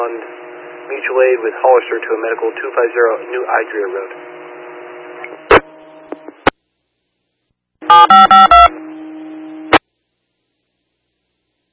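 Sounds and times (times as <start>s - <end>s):
hissy radio channel: 0.0s - 6.5s
speech: 0.9s - 4.4s, 8.0s - 8.6s
electronic fire dispatch alert tones over a radio channel: 7.9s - 8.7s.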